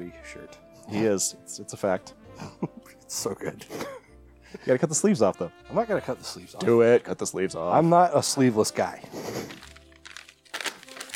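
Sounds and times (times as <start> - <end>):
speech: 0.0 - 9.6
taco wrapper paper crinkling: 8.6 - 11.1.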